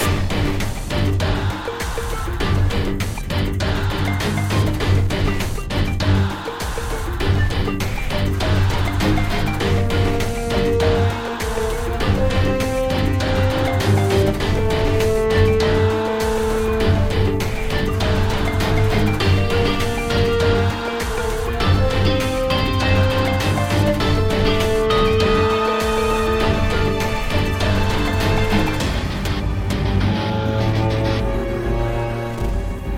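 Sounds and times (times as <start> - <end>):
music loop: 0.0 - 32.9.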